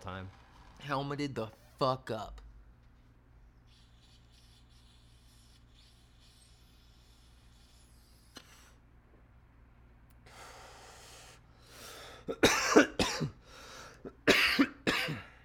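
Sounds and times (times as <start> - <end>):
speech: 0.1 - 2.4, 12.3 - 12.5
breathy inhale: 10.2 - 12.3, 13.4 - 14.0
harsh loud coughing: 12.2 - 13.4, 14.0 - 15.4.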